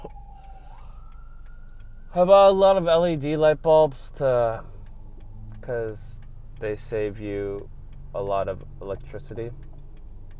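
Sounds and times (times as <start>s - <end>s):
ambulance sirens wailing outside: 0.0s - 7.0s
low rumble of noise: 0.0s - 10.3s
speech: 2.1s - 4.7s, 5.6s - 9.7s.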